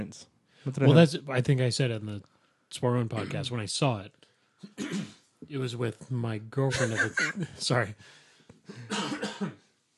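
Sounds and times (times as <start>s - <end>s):
speech: 0.0s - 9.6s
man clearing a frog in his throat: 4.6s - 5.2s, 6.7s - 7.6s, 8.7s - 9.6s
laughter: 6.6s - 7.9s.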